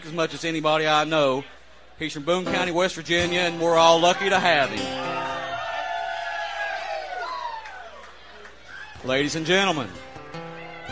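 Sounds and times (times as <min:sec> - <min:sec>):
speech: 0:00.0 - 0:05.1, 0:09.0 - 0:10.1
audience cheering, whooping and hollering: 0:04.0 - 0:09.0, 0:10.4 - 0:10.9
audience applauding: 0:05.0 - 0:08.9.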